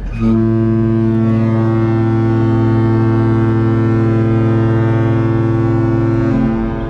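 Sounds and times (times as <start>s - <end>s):
large cruise ship foghorn blast: 0.0s - 6.8s.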